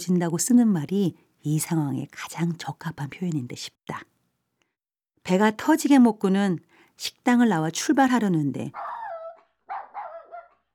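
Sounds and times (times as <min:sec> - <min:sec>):
speech: 0:00.0 - 0:04.1, 0:05.2 - 0:09.0
dog whining and crying: 0:08.8 - 0:10.7.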